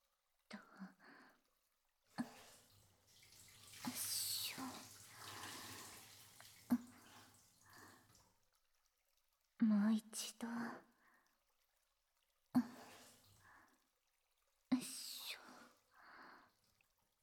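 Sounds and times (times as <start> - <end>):
water poured in a bath to rinse a body: 0.0 - 17.2.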